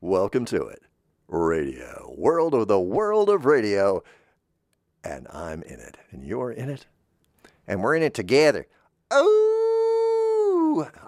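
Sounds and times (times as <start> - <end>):
speech: 0.0 - 4.2, 5.0 - 6.9, 7.7 - 9.5, 10.7 - 11.0
person howling like a wolf: 9.1 - 11.0.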